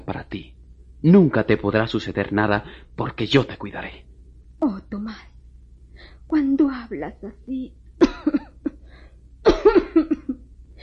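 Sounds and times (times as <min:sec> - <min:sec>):
speech: 0:00.0 - 0:05.3, 0:06.3 - 0:08.4
person with a heavy chest cold coughing in harsh throaty bursts: 0:08.0 - 0:08.6, 0:09.5 - 0:10.4.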